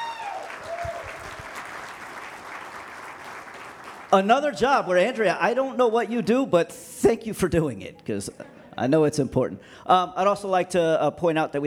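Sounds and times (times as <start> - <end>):
audience applauding: 0.0 - 4.3
speech: 4.1 - 11.6.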